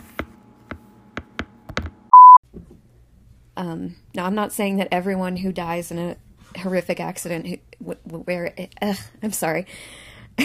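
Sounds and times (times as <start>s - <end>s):
electronic device notification beep: 2.2s - 2.4s
speech: 3.6s - 10.4s.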